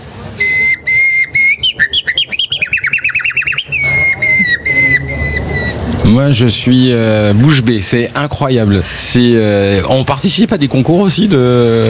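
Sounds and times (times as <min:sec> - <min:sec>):
person whistling an imitation of a nightingale song: 0:00.4 - 0:05.8
speech: 0:06.1 - 0:11.8.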